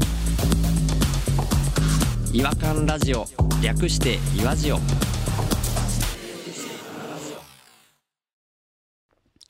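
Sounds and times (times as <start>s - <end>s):
short punchy radio jingle music: 0.2s - 7.9s
speech: 2.3s - 5.2s
voice in a reverb-drenched tail: 6.1s - 7.6s.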